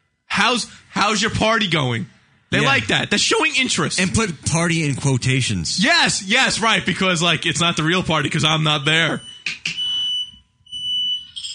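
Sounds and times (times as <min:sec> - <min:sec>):
speech: 0:00.4 - 0:09.8
household smoke alarm going off: 0:08.7 - 0:11.5.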